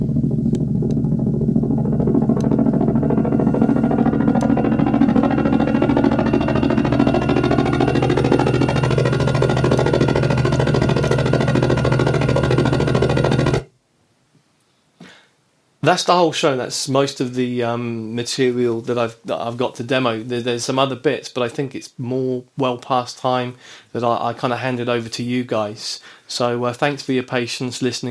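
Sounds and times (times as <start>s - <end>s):
modelled vehicle engine from a video game audio engine droning: 0.0s - 13.7s
speech: 15.9s - 28.0s.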